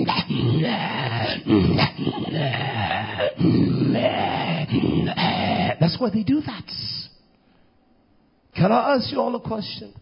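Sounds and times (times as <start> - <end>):
voice imitating growling and groaning: 0.0 - 5.8
speech: 0.7 - 7.0, 8.6 - 9.9.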